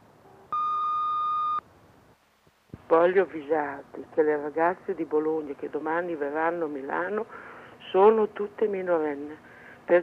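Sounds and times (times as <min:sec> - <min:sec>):
hiss: 0:00.0 - 0:10.0
answering machine beep: 0:00.5 - 0:01.6
speech: 0:02.9 - 0:10.0.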